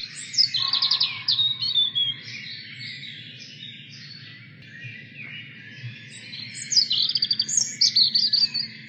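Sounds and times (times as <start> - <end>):
European robin singing: 0.0 - 8.8.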